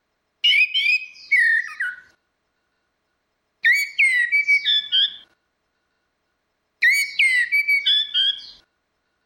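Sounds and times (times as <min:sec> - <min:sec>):
orange-headed thrush singing whistled notes: 0:00.4 - 0:02.2, 0:03.6 - 0:05.3, 0:06.8 - 0:08.7.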